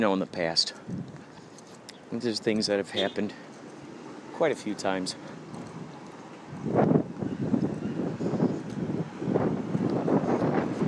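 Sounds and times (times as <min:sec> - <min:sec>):
speech: 0:00.0 - 0:01.2, 0:02.1 - 0:03.5, 0:04.4 - 0:05.4
strong wind buffeting the microphone: 0:00.9 - 0:01.3, 0:05.4 - 0:10.8.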